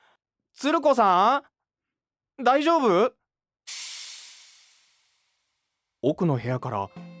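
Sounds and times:
speech: 0.6 - 1.5, 2.4 - 3.8, 6.0 - 7.1
steam hissing from miso soup boiling over: 3.7 - 5.5.

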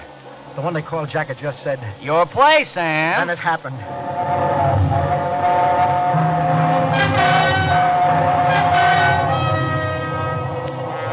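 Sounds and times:
train roaring through a tunnel: 0.0 - 11.1
speech: 0.6 - 5.2
droning tonal screech: 3.8 - 10.6.

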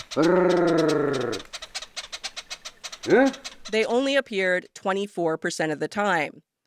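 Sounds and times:
person giving a trilled call to summon honeyguide birds in Mozambique: 0.0 - 4.5
person grunting: 0.2 - 1.4, 3.0 - 3.4
speech: 0.2 - 1.6, 3.0 - 6.5.

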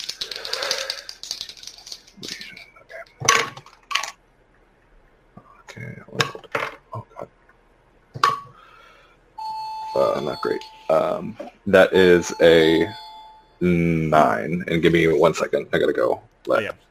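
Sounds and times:
dice rattling and clattering across a hard surface: 0.0 - 2.5
doorbell chiming with a steady electronic tone: 9.4 - 11.2, 12.0 - 13.7
speech: 10.2 - 13.0, 13.6 - 16.8.

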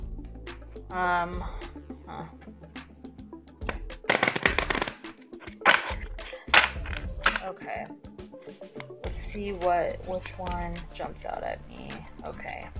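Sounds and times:
speech: 0.9 - 2.8, 7.4 - 12.7
deck of oracle cards being shuffled: 3.6 - 7.6.

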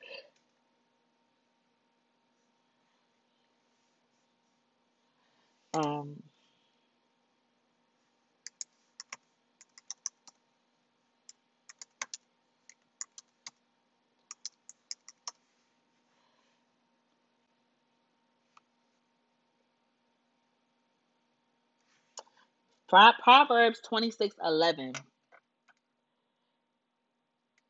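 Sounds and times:
faint steady hum: 0.0 - 27.6
typing on a keyboard with long nails: 8.5 - 10.4, 11.7 - 13.6, 14.3 - 15.4
speech: 22.9 - 25.1.

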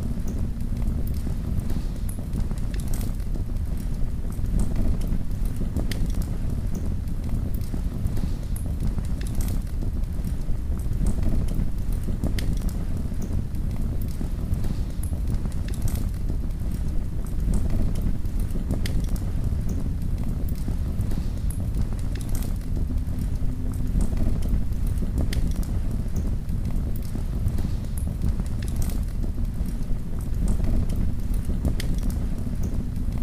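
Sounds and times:
torches flickering and crackling in a cave: 0.2 - 33.2.

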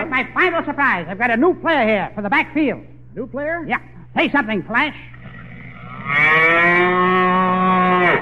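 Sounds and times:
speech: 0.2 - 5.1, 6.1 - 7.0
long loud droning cow moo: 5.1 - 8.1.

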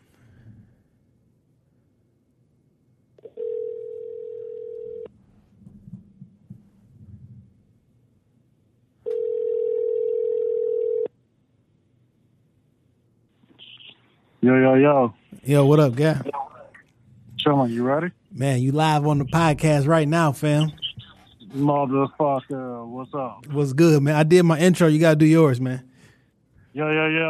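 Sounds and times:
ringback tones on an outgoing phone call: 3.2 - 5.1, 9.1 - 11.1
speech: 14.5 - 16.4, 17.6 - 20.8, 21.5 - 25.9, 26.8 - 27.2.

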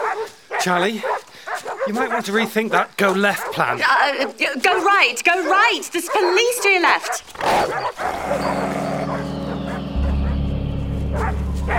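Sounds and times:
dogs barking: 0.0 - 11.7
speech: 0.2 - 1.2, 1.8 - 8.6
loud steady low droning hum: 9.1 - 11.7.

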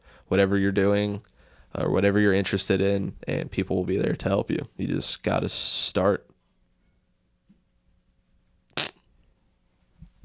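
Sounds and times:
speech: 0.3 - 6.3
short loud fart: 8.7 - 9.1.

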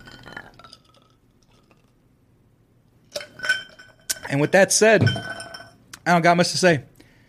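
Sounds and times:
glasses clinking together in a tequila toast: 0.0 - 1.8, 3.1 - 5.8
speech: 4.3 - 5.4, 6.1 - 6.9.

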